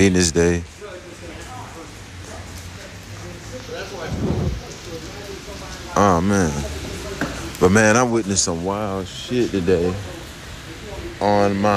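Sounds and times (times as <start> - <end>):
speech: 0.0 - 0.7, 6.0 - 6.7, 7.6 - 10.2, 11.2 - 11.7
steady rain hissing and pattering: 0.0 - 11.7
brief low rumbling swell: 3.8 - 5.1.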